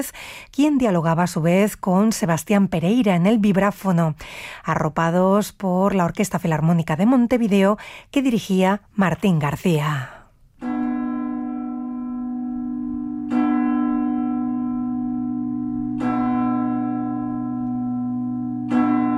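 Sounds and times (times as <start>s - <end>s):
speech: 0.0s - 10.7s
church bells ringing: 10.6s - 19.1s.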